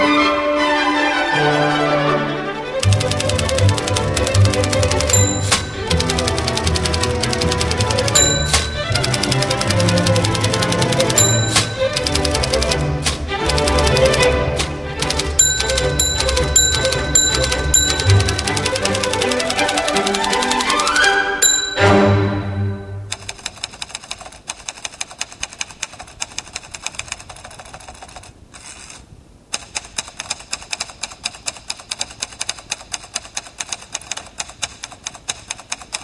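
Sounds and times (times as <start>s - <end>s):
full musical backing: 0.0s - 23.2s
typewriter played as a percussion instrument: 2.8s - 21.8s, 23.1s - 28.3s, 29.6s - 36.0s
typewriter bell dings: 4.2s - 12.8s, 15.0s - 23.4s.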